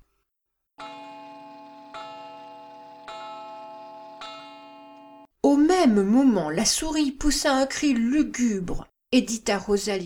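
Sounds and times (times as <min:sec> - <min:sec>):
clock striking midnight with deep resonant chimes: 0:00.8 - 0:05.3
speech: 0:05.5 - 0:10.0.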